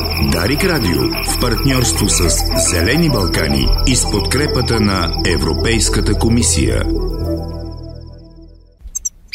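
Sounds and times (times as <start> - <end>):
European goldfinch singing: 0.0 - 7.2
brief tonal sound: 0.0 - 8.7
speech: 0.4 - 7.0.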